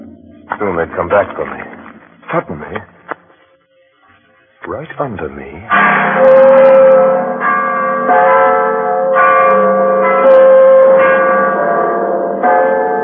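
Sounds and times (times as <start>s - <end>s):
church bells ringing: 0.0s - 2.8s, 5.5s - 13.0s
speech: 0.6s - 2.9s, 4.7s - 7.1s, 8.1s - 8.6s.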